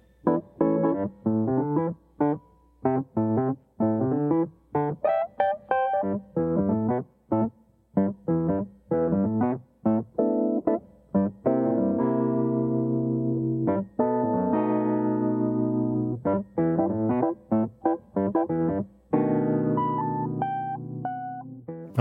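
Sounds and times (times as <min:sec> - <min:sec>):
solo Wurlitzer electric piano playing bluesy, jazzy chords and short riffs: 0:00.0 - 0:22.0.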